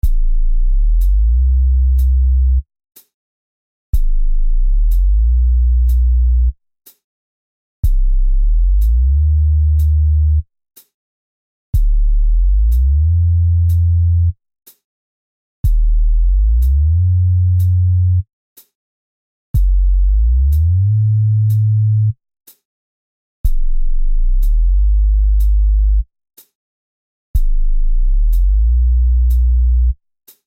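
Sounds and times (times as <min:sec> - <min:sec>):
slow building bass: 0:00.0 - 0:02.6, 0:04.0 - 0:06.6, 0:07.8 - 0:10.4, 0:11.8 - 0:14.4, 0:15.6 - 0:18.2, 0:19.6 - 0:22.2, 0:23.4 - 0:26.0, 0:27.4 - 0:30.0.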